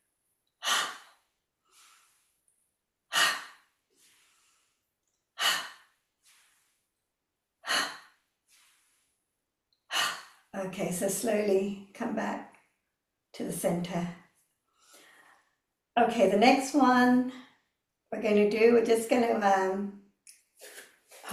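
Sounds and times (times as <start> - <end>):
slow deep breathing: 0.6 - 7.0, 7.6 - 10.5, 14.7 - 15.6
speech: 10.6 - 12.5, 13.4 - 14.2, 16.0 - 17.5, 18.1 - 20.0.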